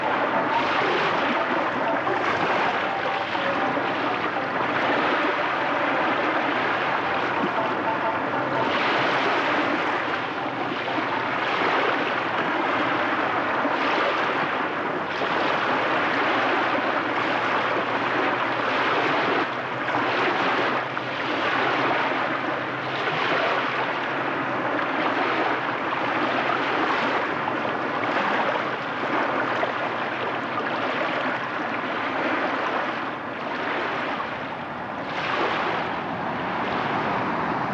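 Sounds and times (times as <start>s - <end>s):
ocean surf: 0.0s - 37.7s.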